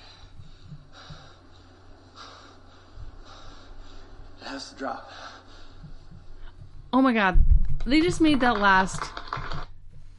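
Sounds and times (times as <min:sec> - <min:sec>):
heavy breathing in a horror movie scene: 0:00.0 - 0:06.9
speech: 0:04.6 - 0:05.3, 0:06.9 - 0:09.2.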